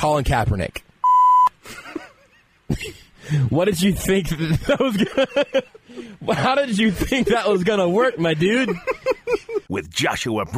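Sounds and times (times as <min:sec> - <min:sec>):
speech: 0:00.0 - 0:00.8, 0:02.7 - 0:10.5
censor bleep: 0:01.0 - 0:01.5
laughter: 0:04.4 - 0:09.7.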